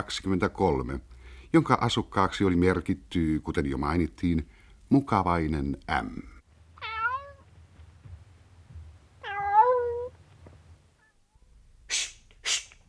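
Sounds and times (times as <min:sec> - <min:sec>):
speech: 0:00.0 - 0:06.3
cat meowing: 0:06.8 - 0:07.5, 0:09.2 - 0:10.2
short breathy bursts: 0:11.8 - 0:12.8.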